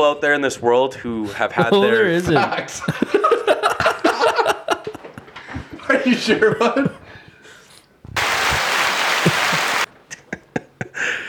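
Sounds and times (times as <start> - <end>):
speech: 0.0 - 3.3, 6.0 - 7.0
laughter: 1.3 - 5.3, 9.0 - 11.1
dense hissy applause: 8.2 - 9.9.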